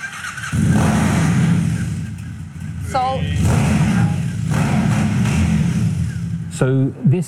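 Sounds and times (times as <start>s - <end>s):
small-capacity motorcycle engine starting, idling and revving in a showroom: 0.0s - 7.0s
speech: 6.6s - 7.2s.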